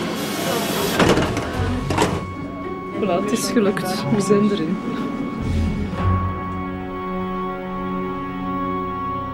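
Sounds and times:
faint murmured voices: 0.0s - 7.2s
steady rumble of crowd noise and machinery in a busy metro carriage: 0.0s - 9.2s
speech: 3.0s - 5.1s.

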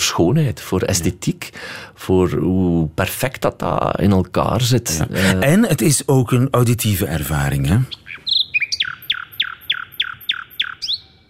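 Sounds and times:
speech: 0.1s - 8.0s
nightingale singing with varied whistles and repeated descending notes: 7.8s - 11.2s.

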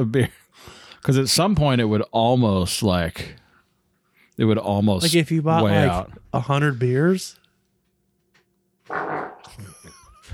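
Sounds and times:
speech: 0.0s - 3.4s, 4.4s - 7.4s
wet fart: 8.9s - 9.8s
laughter: 9.4s - 10.3s.

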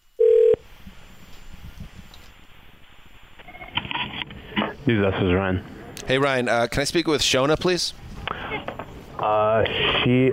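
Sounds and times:
hiss of an open telephone line: 0.0s - 10.3s
telephone tone: 0.2s - 0.6s
speech: 4.9s - 10.3s.

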